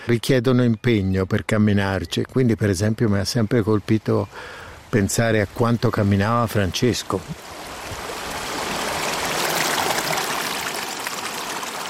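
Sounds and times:
speech: 0.0 - 7.7
water of the young Arno river flowing over stones: 4.4 - 11.8.

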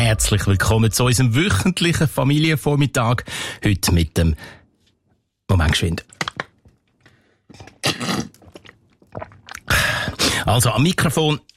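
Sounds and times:
speech: 0.1 - 4.6, 5.5 - 6.2, 10.4 - 11.5
person sipping a drink: 7.6 - 10.4
wet slurping and gulping: 7.6 - 10.5.

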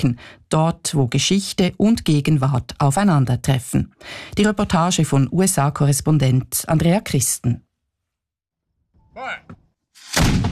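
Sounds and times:
speech: 0.0 - 7.6, 9.2 - 10.4
brief voice-like call: 9.1 - 9.6.

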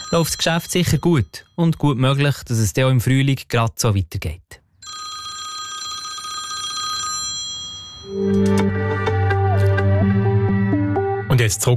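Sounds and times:
telephone bell ringing with steady high tones: 0.0 - 1.2, 4.8 - 8.6
speech: 0.1 - 4.5, 11.5 - 11.7
fuller musical passage with sustained low notes: 8.1 - 11.4.

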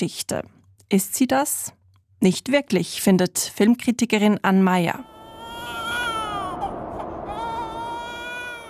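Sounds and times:
speech: 0.0 - 5.1
newborn baby crying: 5.0 - 8.6.

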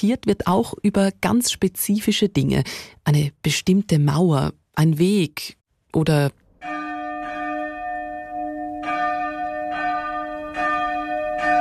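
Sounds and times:
speech: 0.0 - 6.4
church bells ringing in a pealing sequence: 6.6 - 11.5.

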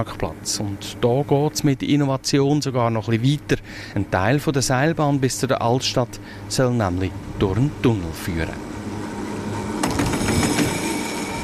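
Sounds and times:
speech: 0.0 - 8.7
130-year-old tram rumbling along the rails: 6.9 - 11.4
tram wheels clacking over track joints: 9.1 - 11.4.

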